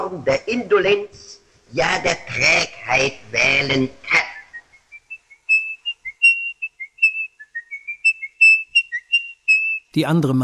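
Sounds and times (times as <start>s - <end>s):
speech: 0.1s - 4.2s, 10.0s - 10.4s
nervous imperfect whistling of a classical melody: 4.5s - 9.9s.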